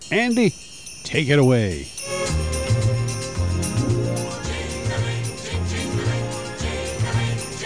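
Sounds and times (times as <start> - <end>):
sleigh bells jingling: 0.0 - 7.6
speech: 0.1 - 2.0
festive orchestral Christmas song intro: 1.9 - 7.6.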